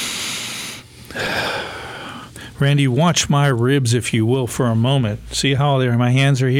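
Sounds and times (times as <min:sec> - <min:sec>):
deep breath in during a therapeutic breathing exercise: 0:00.0 - 0:02.6
speech: 0:02.6 - 0:06.5.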